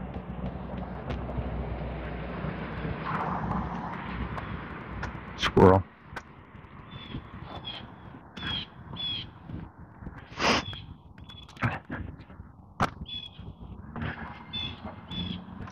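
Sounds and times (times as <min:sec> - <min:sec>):
steady ambient noise: 0:00.0 - 0:15.0
speech: 0:05.4 - 0:05.9
blue jay squawking outdoors: 0:06.9 - 0:09.4, 0:10.4 - 0:11.5, 0:13.0 - 0:13.4, 0:14.5 - 0:15.5.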